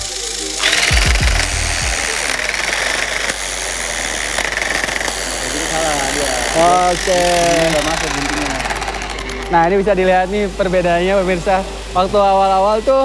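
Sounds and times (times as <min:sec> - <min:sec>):
handheld tufting gun punching yarn into canvas: 0:00.0 - 0:12.6
low thumps of tufting gun punching yarn through backing: 0:00.9 - 0:02.0
speech: 0:06.6 - 0:08.2, 0:09.5 - 0:13.0.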